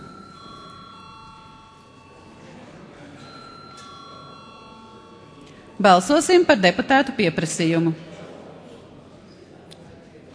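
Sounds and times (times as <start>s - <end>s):
electric bell ringing in a parliament chamber to call a vote: 0.0s - 7.1s
speech: 5.8s - 8.1s.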